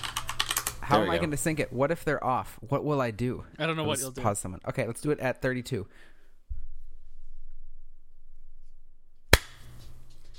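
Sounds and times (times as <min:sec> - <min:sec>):
speech: 0:00.9 - 0:06.1
single sharp hand clap: 0:09.4 - 0:09.7.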